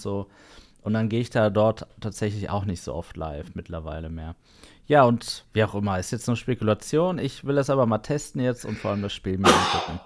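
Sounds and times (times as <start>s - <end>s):
speech: 0.0s - 10.0s
person sneezing: 8.7s - 10.0s.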